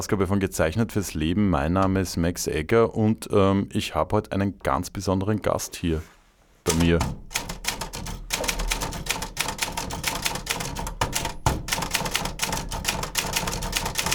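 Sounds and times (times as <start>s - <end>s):
speech: 0.0s - 7.3s
fully automatic typewriter typing rapidly: 6.7s - 14.1s.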